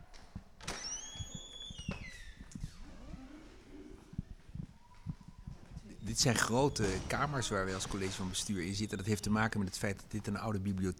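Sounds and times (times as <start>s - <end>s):
footsteps: 0.0s - 10.9s
heavy door creaking open in a historic former library building in Leiden: 0.6s - 4.1s, 5.8s - 10.4s
speech: 6.2s - 10.9s.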